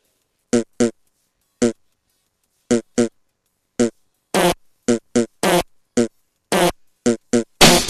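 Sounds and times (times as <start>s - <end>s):
farting: 0.5s - 1.0s, 1.6s - 1.8s, 2.7s - 3.2s, 3.8s - 7.8s.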